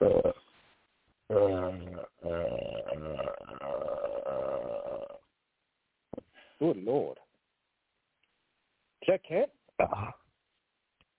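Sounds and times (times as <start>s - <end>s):
long loud drawn-out belch: 0.0s - 0.4s, 1.3s - 5.3s, 9.8s - 10.2s.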